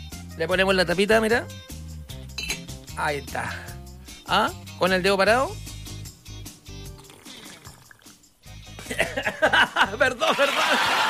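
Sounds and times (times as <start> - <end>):
speech: 0.4 - 1.7, 3.0 - 3.7, 4.3 - 5.6, 8.9 - 11.0
wet gurgling slurping of water from a drink: 7.0 - 8.2
laughter: 8.8 - 11.0.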